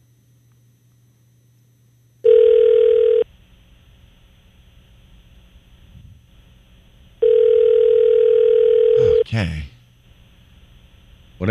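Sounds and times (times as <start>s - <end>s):
telephone ringback tone on an outgoing call: 2.2s - 3.2s, 7.2s - 9.2s
speech: 9.4s - 9.7s.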